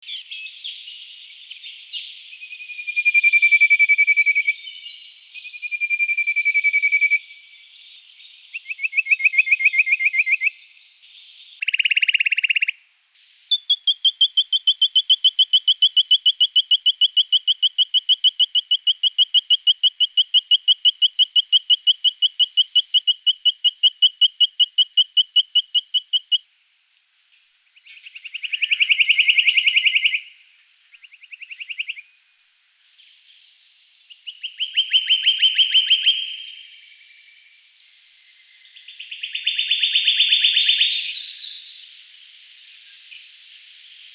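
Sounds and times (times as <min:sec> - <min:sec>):
white-throated treecreeper calling: 0:00.0 - 0:26.5, 0:27.3 - 0:44.1.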